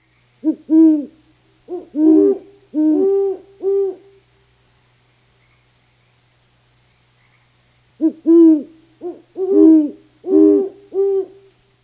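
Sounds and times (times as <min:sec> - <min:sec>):
Great Horned Owl duet: 0:00.4 - 0:04.2, 0:08.0 - 0:11.5.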